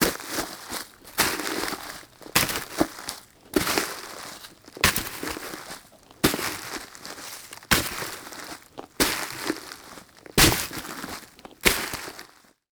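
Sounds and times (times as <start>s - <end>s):
soft sole dress shoe footsteps walking on leaves and twig debris: 0.0s - 12.6s.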